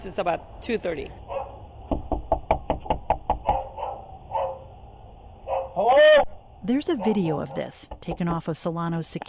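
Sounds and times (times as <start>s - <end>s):
speech: 0.0s - 1.4s, 6.7s - 9.2s
dog barking: 1.3s - 1.6s, 3.4s - 4.7s, 5.5s - 5.8s, 6.9s - 7.8s
heavy knocks pounding on a front door: 1.9s - 3.7s.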